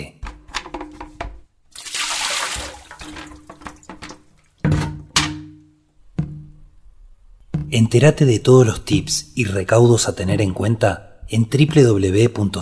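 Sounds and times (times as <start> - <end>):
containers thunking and clattering as they are set down: 0.2 - 5.6
water splashing out of tipped-over containers: 1.7 - 4.6
speech: 7.7 - 12.6.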